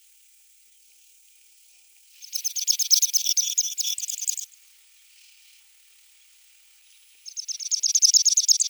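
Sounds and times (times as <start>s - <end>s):
Pechora pipit singing a rapid insect-like trilled rattle: 2.2s - 4.5s, 7.3s - 8.6s.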